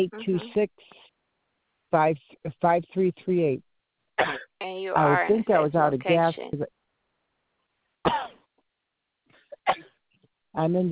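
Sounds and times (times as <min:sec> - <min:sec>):
speech: 0:00.0 - 0:01.0, 0:01.9 - 0:06.8, 0:10.6 - 0:10.9
person with a recurring allergy cough coughing: 0:04.2 - 0:04.6, 0:08.1 - 0:08.5, 0:09.4 - 0:09.9.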